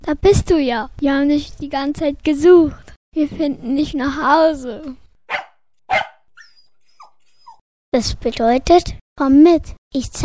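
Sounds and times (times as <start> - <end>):
speech: 0.1 - 5.0, 7.9 - 10.2
small dog barking: 5.3 - 7.6.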